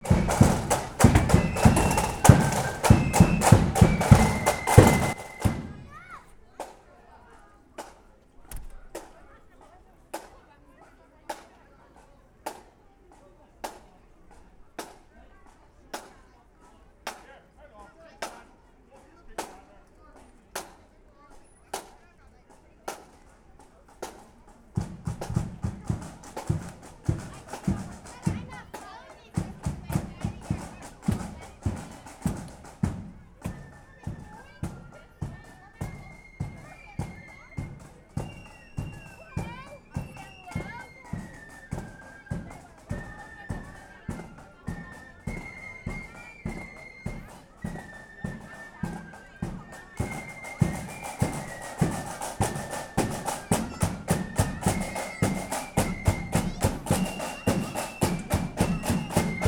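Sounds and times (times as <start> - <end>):
flute band playing: 0.0 - 6.1, 24.8 - 59.4.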